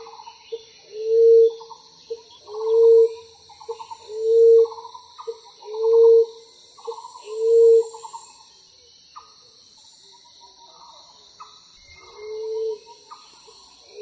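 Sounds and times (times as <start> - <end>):
common emerald dove cooing: 0.0 - 8.1, 11.9 - 14.0.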